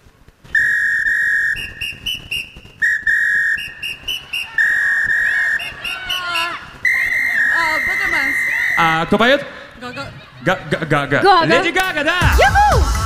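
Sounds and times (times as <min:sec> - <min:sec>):
man whistling a tune: 0:00.6 - 0:08.8
speech: 0:09.0 - 0:12.9
laughter: 0:09.8 - 0:12.8.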